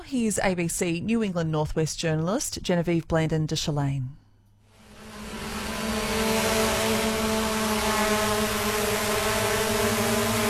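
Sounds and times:
speech: 0:00.1 - 0:04.2
surveillance drone motor hum: 0:04.8 - 0:10.4.

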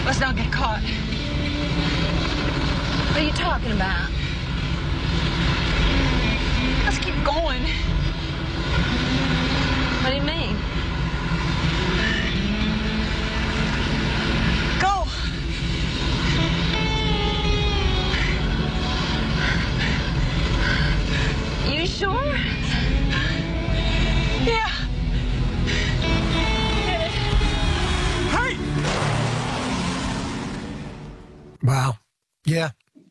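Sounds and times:
car engine roaring as it drives off a cliff: 0:00.0 - 0:31.6
dramatic film music: 0:00.0 - 0:31.6
speech: 0:00.1 - 0:01.9, 0:03.2 - 0:04.3, 0:06.8 - 0:08.0, 0:10.0 - 0:10.8, 0:21.8 - 0:22.6, 0:31.6 - 0:32.8.

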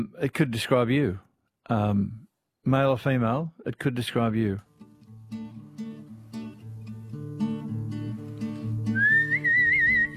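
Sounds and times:
speech: 0:00.0 - 0:04.7
bright wavering whistled melody: 0:08.8 - 0:10.1.

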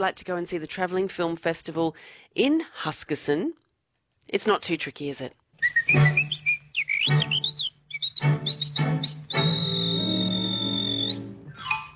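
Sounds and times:
speech: 0:00.0 - 0:03.6, 0:04.3 - 0:06.4
person whistling a bouncy melody: 0:05.6 - 0:11.8
light instrumental backing: 0:07.1 - 0:11.9.

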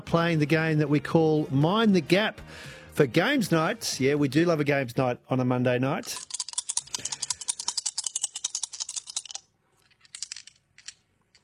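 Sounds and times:
speech: 0:00.0 - 0:06.4
dice rattling in a cup: 0:06.0 - 0:11.4.

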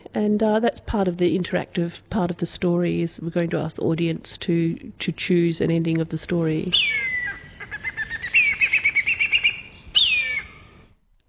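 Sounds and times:
speech: 0:00.2 - 0:07.1
black kite calling: 0:06.7 - 0:10.8.

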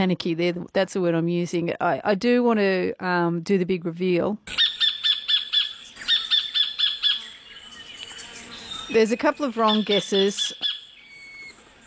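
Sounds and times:
speech: 0:00.0 - 0:04.6, 0:08.9 - 0:10.7
sacred kingfisher calling in harsh scratchy notes: 0:04.5 - 0:11.8.

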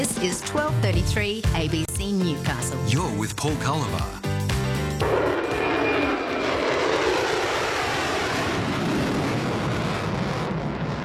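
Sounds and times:
speech: 0:00.2 - 0:04.4
aircraft engine roar from an airplane taking off low and climbing rapidly: 0:04.6 - 0:11.0.

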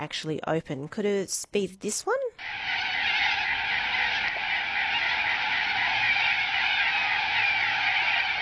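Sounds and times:
speech: 0:00.0 - 0:02.7
large flock of corellas squawking: 0:02.4 - 0:08.4.

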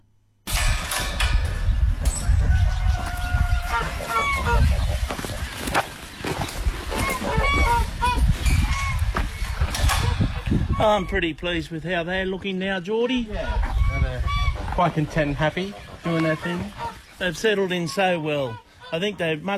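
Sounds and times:
noisy farmyard background: 0:00.8 - 0:19.5
flock of geese honking: 0:02.5 - 0:11.4, 0:13.4 - 0:19.5
speech: 0:10.8 - 0:13.7, 0:14.8 - 0:19.5.

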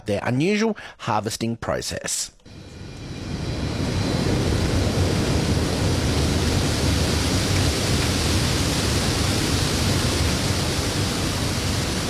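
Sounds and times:
speech: 0:00.1 - 0:02.6
low rumble: 0:02.5 - 0:12.0
sprinklers spraying pumped seawater in evaporation towers at a sea salt producer: 0:04.1 - 0:12.0.

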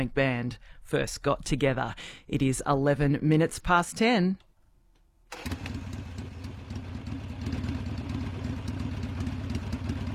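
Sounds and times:
speech: 0:00.0 - 0:04.5, 0:05.3 - 0:05.8
Harley motorcycle engine revving and taking off: 0:05.3 - 0:10.1.

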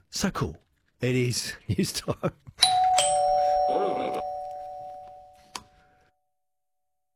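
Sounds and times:
speech: 0:00.1 - 0:02.7
doorbell chiming with sustained ringing tone: 0:02.6 - 0:05.6.

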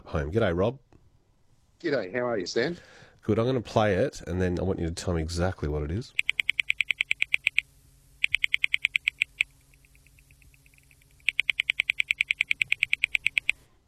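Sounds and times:
speech: 0:00.1 - 0:00.9, 0:01.8 - 0:06.2
male white-bellied frog clicking calls: 0:06.1 - 0:13.6.

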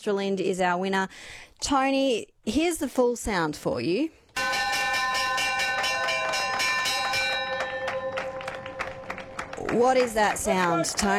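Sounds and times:
speech: 0:00.0 - 0:04.2, 0:09.8 - 0:11.1
ship's bell clanging on a tall ship in port: 0:04.4 - 0:10.9.

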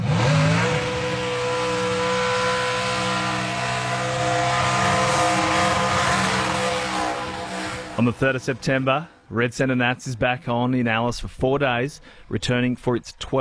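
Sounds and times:
race car engines revving during drag racing and burnouts at a motor event: 0:00.0 - 0:09.3
speech: 0:08.0 - 0:13.3.

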